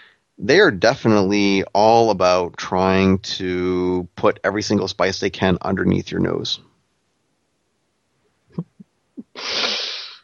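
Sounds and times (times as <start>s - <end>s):
speech: 0.4s - 6.7s, 9.4s - 9.8s
person sneezing: 9.3s - 10.2s.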